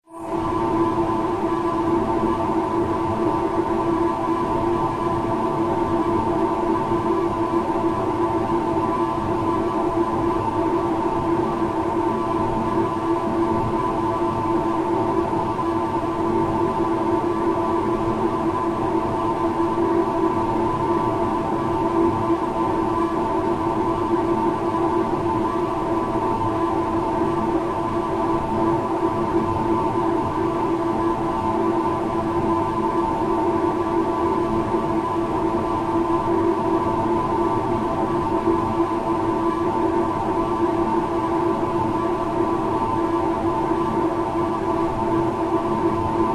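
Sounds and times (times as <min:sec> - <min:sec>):
tonal airy sci-fi spacecraft engine room ambience: 0:00.1 - 0:46.3.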